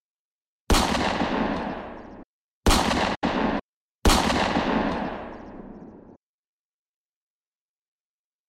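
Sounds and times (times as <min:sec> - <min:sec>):
pistol gunshots inside a gang's headquarters: 0:00.7 - 0:06.2.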